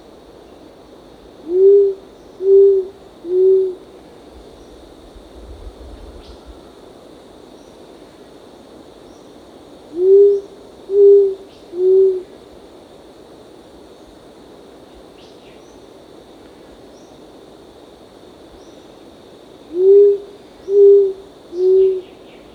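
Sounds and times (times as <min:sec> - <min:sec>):
short-toed coucal low hoots: 0:01.4 - 0:04.0, 0:09.9 - 0:12.4, 0:19.7 - 0:22.2.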